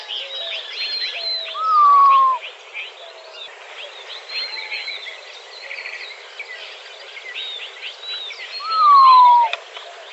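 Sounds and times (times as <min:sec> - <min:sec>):
small birds chirping and twittering in Arizona: 0:00.0 - 0:10.1
Montezuma quail giving a loud descending whistle in Arizona: 0:01.6 - 0:02.4, 0:08.6 - 0:09.6.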